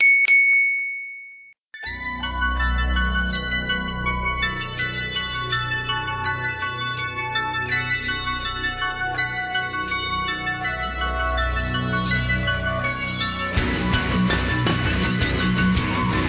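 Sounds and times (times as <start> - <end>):
bells ringing: 0.0 - 16.1.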